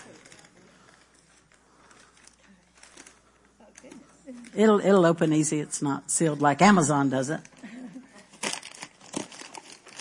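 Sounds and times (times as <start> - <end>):
wrapping paper crinkling while unwrapping a gift: 0.0 - 4.6, 6.8 - 10.0
speech: 4.6 - 7.6.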